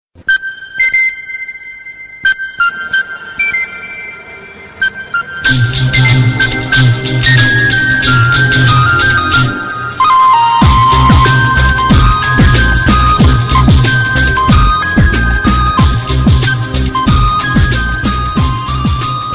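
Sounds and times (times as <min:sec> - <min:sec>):
soft flute remix: 0:00.2 - 0:19.3.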